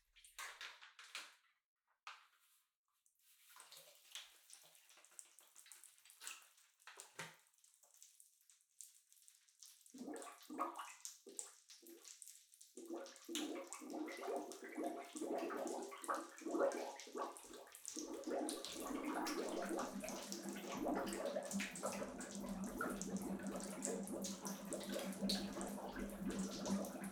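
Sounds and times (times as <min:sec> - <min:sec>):
bubble bath foaming in a filling bathtub: 0:10.0 - 0:27.1
water rushing into a filling bathtub: 0:12.8 - 0:27.1.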